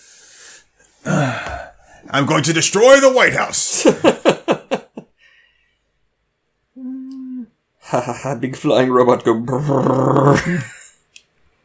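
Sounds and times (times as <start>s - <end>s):
person yawning with a groaning exhale: 1.0s - 1.7s, 6.8s - 7.6s
speech: 2.1s - 4.2s, 7.9s - 10.8s.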